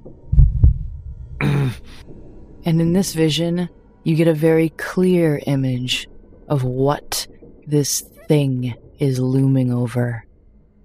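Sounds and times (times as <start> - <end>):
deep heartbeat thumps: 0.0 - 2.3
speech: 1.6 - 10.3.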